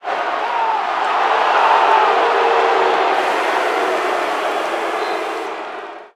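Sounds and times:
basketball crowd booing: 0.0 - 6.1.

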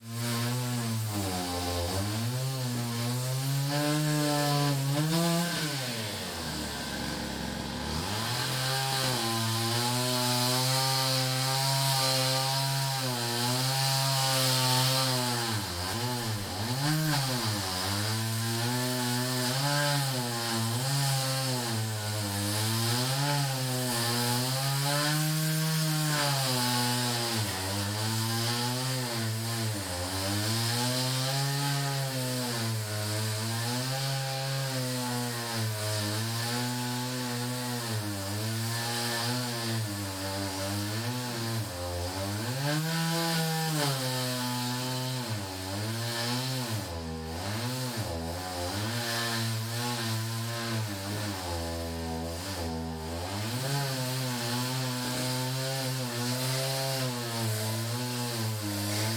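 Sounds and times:
chainsaw in action: 0.0 - 59.1.

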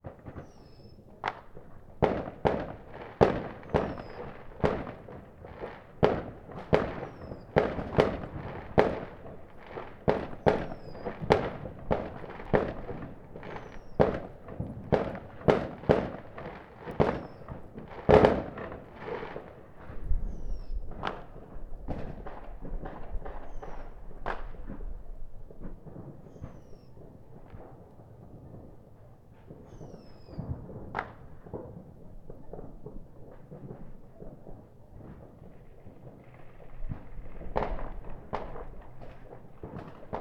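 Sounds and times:
fireworks: 0.0 - 40.1.

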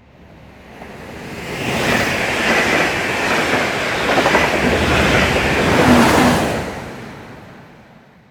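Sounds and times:
train passing fast: 0.0 - 8.3.

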